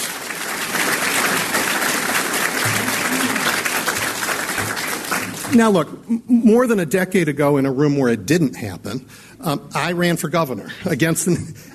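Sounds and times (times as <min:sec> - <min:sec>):
sizable audience applauding for journalists: 0:00.0 - 0:05.8
speech: 0:05.5 - 0:11.7.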